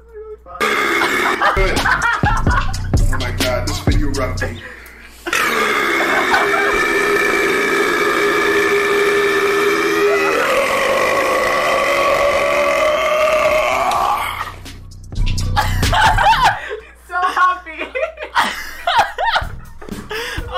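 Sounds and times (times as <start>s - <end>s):
loud drawn-out burp with wavering pitch: 0.6s - 1.8s, 5.3s - 14.6s
chuckling and laughter: 0.9s - 3.4s, 5.2s - 7.2s, 15.6s - 20.4s
speech: 4.0s - 4.8s.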